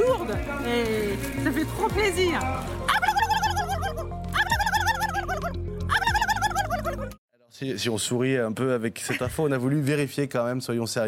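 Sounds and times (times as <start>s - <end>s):
speech: 0.3s - 2.8s, 7.6s - 11.0s
person imitating a turkey's gobble at a turkey-calling competition: 2.9s - 7.1s.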